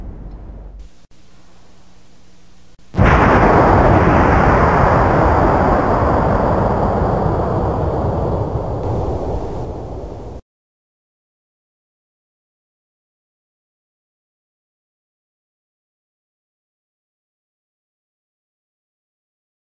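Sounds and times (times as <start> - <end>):
low hum: 0.0 - 10.4
explosion of a booby-trapped mine in a video game: 2.9 - 10.4
gunshots in a video game: 3.0 - 10.4.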